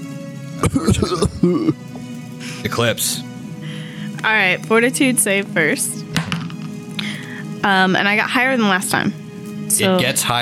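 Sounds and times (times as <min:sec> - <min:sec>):
person coughing and clearing their throat: 0:00.6 - 0:01.8
speech: 0:00.6 - 0:01.9, 0:02.6 - 0:03.3, 0:04.2 - 0:06.0, 0:07.6 - 0:09.2, 0:09.8 - 0:10.4.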